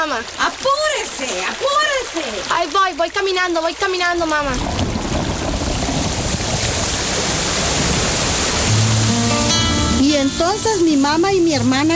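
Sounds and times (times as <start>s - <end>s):
speech: 0.0s - 5.0s, 10.1s - 11.9s
steady heavy rain during a storm: 0.0s - 11.9s
thunder: 4.4s - 8.9s.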